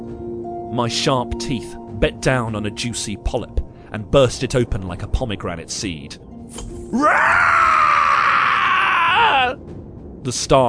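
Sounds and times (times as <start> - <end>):
speech: 0.7 - 7.8, 9.2 - 10.6
creature shrieking in agony: 6.9 - 9.6.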